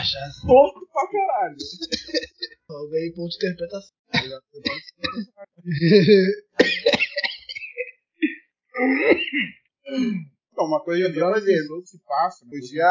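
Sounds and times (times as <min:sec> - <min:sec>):
speech: 0:00.0 - 0:07.0, 0:08.8 - 0:12.8
raspy throat clearing: 0:01.6 - 0:02.5, 0:04.2 - 0:10.2
laughter: 0:01.6 - 0:07.9, 0:10.6 - 0:12.8
coughing: 0:01.6 - 0:12.8.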